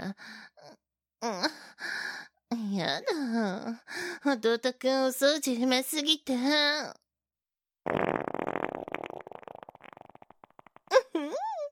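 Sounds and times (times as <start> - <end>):
speech: 1.2 - 1.6, 2.8 - 7.0
long loud sputtering fart: 7.8 - 11.1.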